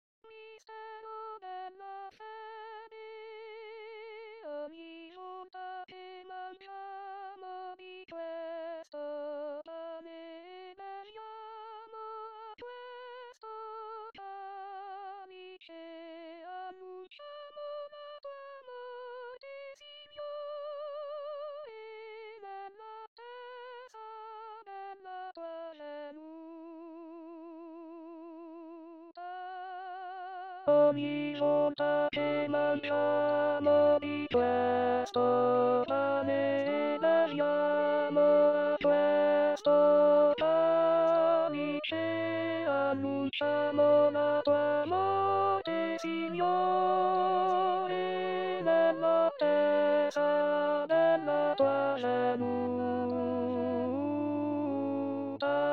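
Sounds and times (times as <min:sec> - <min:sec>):
contralto voices singing: 0:30.7 - 0:55.7.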